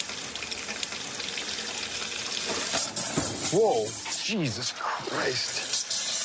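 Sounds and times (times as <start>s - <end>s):
gas-laden water from a running tap ignited by a lighter: 0.0s - 6.2s
speech: 3.5s - 5.7s.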